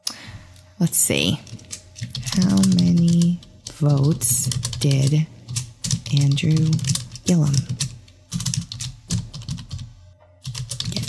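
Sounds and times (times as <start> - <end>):
speech: 0.8 - 1.6, 2.4 - 5.4, 6.1 - 7.9
rapid typing on a computer keyboard: 1.4 - 11.0.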